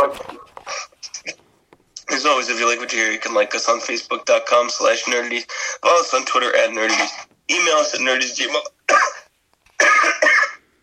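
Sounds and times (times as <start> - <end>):
speech: 0.1 - 0.4, 2.2 - 8.8
man with pneumonia coughing: 8.9 - 10.7.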